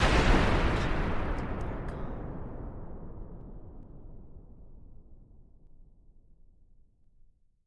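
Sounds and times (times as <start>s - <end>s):
sci-fi explosion: 0.0s - 5.6s.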